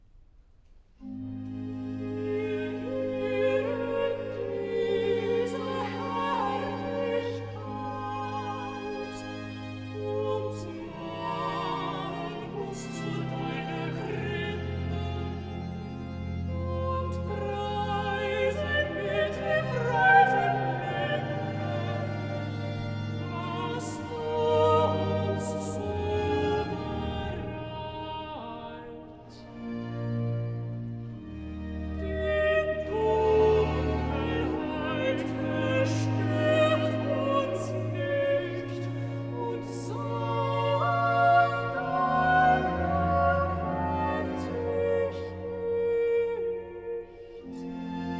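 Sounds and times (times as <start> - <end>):
soprano and alto singing a recitative duet: 1.2 - 30.4, 31.7 - 48.1.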